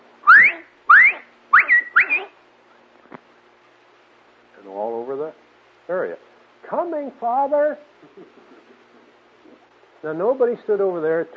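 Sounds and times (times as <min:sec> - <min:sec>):
loud human whistle calling someone to come: 0:00.2 - 0:02.3
speech: 0:06.8 - 0:08.3, 0:10.0 - 0:11.3.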